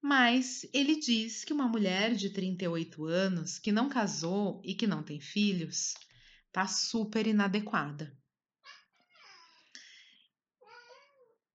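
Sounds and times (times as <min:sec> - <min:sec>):
speech: 0:00.1 - 0:08.2
domestic cat meowing: 0:10.7 - 0:11.3.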